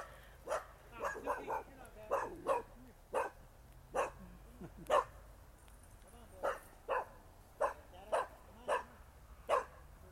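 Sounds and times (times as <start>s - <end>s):
pack of dogs barking angrily: 0.0s - 4.2s, 4.8s - 5.2s, 6.4s - 9.9s.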